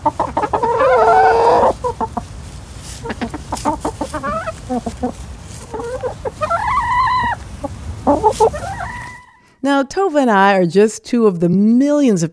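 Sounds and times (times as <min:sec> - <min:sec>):
low outdoor rumble: 0:00.0 - 0:09.4
several backyard chickens clucking and squawking: 0:00.0 - 0:09.5
speech: 0:09.7 - 0:12.3.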